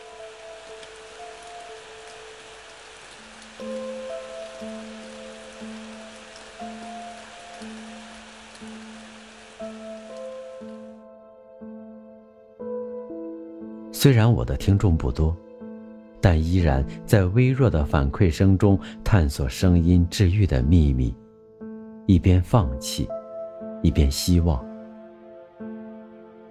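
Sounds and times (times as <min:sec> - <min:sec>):
light drizzling rain: 0:00.0 - 0:11.1, 0:16.2 - 0:21.2
slow gentle sustained musical notes: 0:00.0 - 0:26.4
speech: 0:14.0 - 0:15.4, 0:16.2 - 0:21.2, 0:22.1 - 0:23.2, 0:23.8 - 0:24.7.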